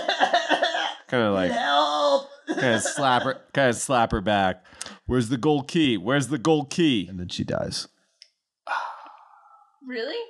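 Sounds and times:
video game character coughing after falling to the ground: 0.0s - 1.0s
speech: 1.1s - 7.9s, 9.8s - 10.2s
laughter: 2.5s - 3.5s.

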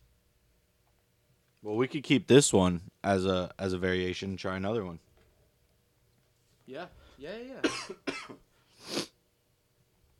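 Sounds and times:
speech: 1.6s - 5.1s, 6.7s - 9.1s
person coughing after choking on a drink: 7.6s - 8.4s.

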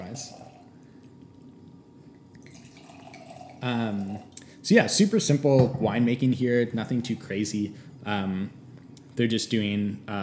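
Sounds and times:
frothy red wine pouring into a glass: 0.0s - 1.0s, 2.0s - 4.3s
speech: 0.1s - 0.5s, 3.6s - 8.6s, 9.2s - 10.2s.

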